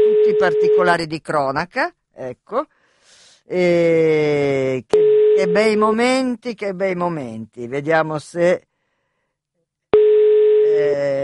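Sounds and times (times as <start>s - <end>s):
telephone ringing tone of an outgoing call: 0.0s - 1.0s, 5.0s - 5.8s, 10.0s - 10.8s
speech: 0.4s - 2.8s, 3.5s - 8.7s, 10.8s - 11.2s.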